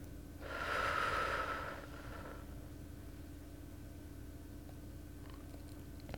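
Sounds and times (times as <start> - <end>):
slow breathing during a guided breathing exercise: 0.4 - 2.6.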